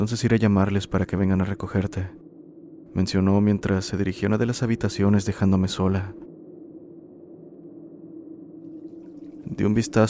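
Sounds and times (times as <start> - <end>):
speech: 0.0 - 2.2, 2.9 - 6.3, 9.5 - 10.0
faint brighter water trickle: 8.6 - 10.0.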